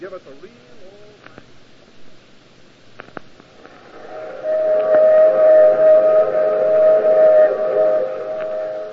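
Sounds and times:
speech: 0.0s - 0.9s
steam train running with a low mechanical rumble: 3.7s - 8.9s.

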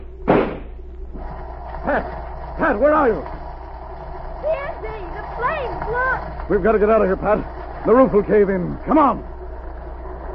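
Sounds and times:
low steady hum: 0.0s - 10.3s
gunshot blasting a door lock: 0.2s - 0.7s
speech: 1.9s - 3.4s, 4.4s - 9.3s.

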